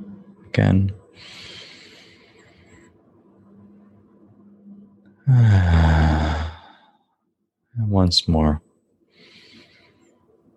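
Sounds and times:
speech: 0.5s - 1.5s, 5.3s - 5.8s, 8.0s - 8.7s
soft airy inhale: 1.2s - 3.0s, 9.1s - 10.2s.

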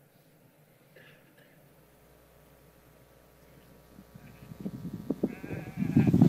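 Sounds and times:
sheep bleating on a hillside: 4.2s - 4.6s, 5.2s - 6.2s.

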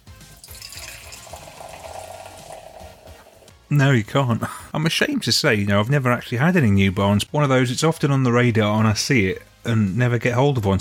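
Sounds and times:
cloudy Saison Pilsner beer pouring from a can into a glass: 0.0s - 3.5s
speech: 3.7s - 10.7s.

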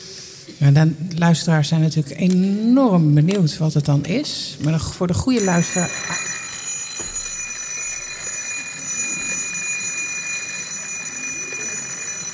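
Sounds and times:
speech: 0.6s - 6.3s
old-fashioned twin-bell alarm clock ringing: 5.4s - 12.3s.

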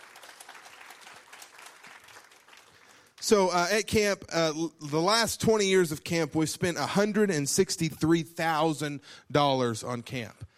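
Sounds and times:
crowd applauding: 0.0s - 3.4s
speech: 3.3s - 10.5s.

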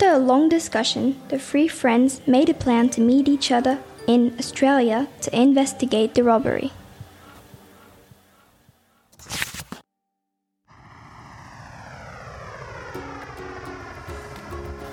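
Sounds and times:
speech: 0.2s - 6.8s
airplane engine roaring in flight: 10.7s - 14.9s
rushing rumble: 10.7s - 14.9s.

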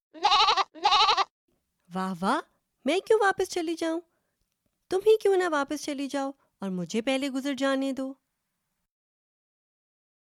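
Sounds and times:
goat bleating: 0.2s - 1.3s
speech: 1.9s - 4.1s, 4.9s - 8.2s.

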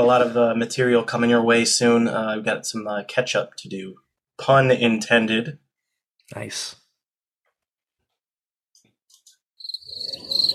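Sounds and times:
speech: 0.0s - 5.6s, 6.3s - 6.8s
high-pitched cricket chirp trilling: 9.6s - 10.5s.

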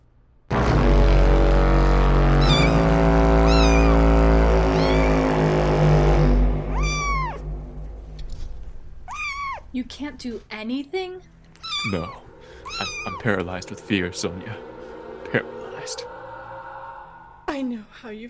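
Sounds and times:
loud steady low rumble: 0.5s - 10.5s, 11.3s - 18.2s
kitten meowing: 2.4s - 5.5s, 6.6s - 8.4s, 9.0s - 10.3s, 11.5s - 13.3s
speech: 10.2s - 14.7s, 15.3s - 16.1s, 17.6s - 18.2s.

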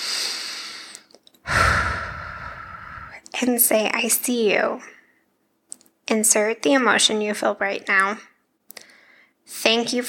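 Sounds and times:
deep breath in: 0.0s - 3.2s, 8.8s - 9.4s
speech: 3.4s - 5.0s, 6.1s - 8.3s, 9.6s - 10.0s.

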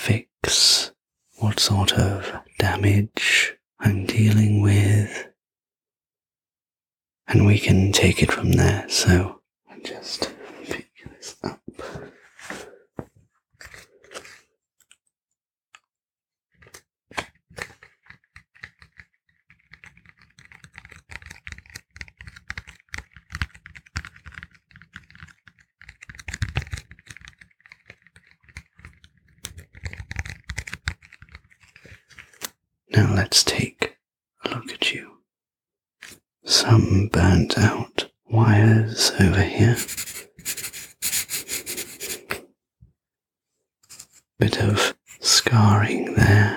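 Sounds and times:
speech: 0.0s - 0.6s, 1.4s - 5.3s, 7.3s - 10.4s, 33.2s - 33.8s, 36.6s - 40.6s, 44.4s - 46.3s
pen scratching on a notepad during a body examination: 13.6s - 14.4s, 17.5s - 32.0s, 39.5s - 42.4s.

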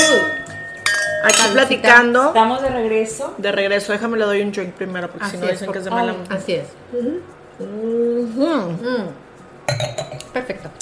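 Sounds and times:
glasses clinking in a toast: 0.0s - 2.0s, 9.7s - 10.2s
speech: 1.2s - 10.7s.

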